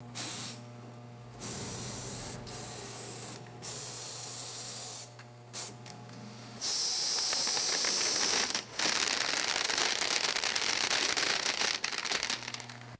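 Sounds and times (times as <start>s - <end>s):
thin compressed air hiss: 0.2s - 0.6s, 1.4s - 5.8s, 6.6s - 8.6s
rattling foil: 7.9s - 12.9s.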